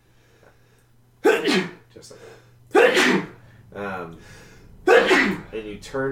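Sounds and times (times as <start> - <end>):
loud sneezes: 1.2 - 1.8, 2.7 - 3.4, 4.8 - 5.5
speech: 1.4 - 4.4, 5.6 - 6.1.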